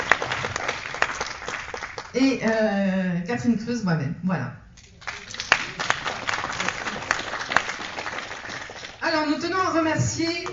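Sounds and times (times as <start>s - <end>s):
audience applauding: 0.0s - 2.2s, 4.9s - 9.2s
speech: 2.1s - 4.6s, 9.1s - 10.5s.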